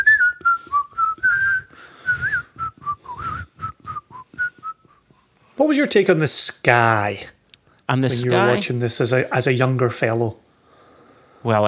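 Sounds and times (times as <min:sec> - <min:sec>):
person whistling a bright melody: 0:00.0 - 0:05.0
speech: 0:05.6 - 0:10.4, 0:11.4 - 0:11.6.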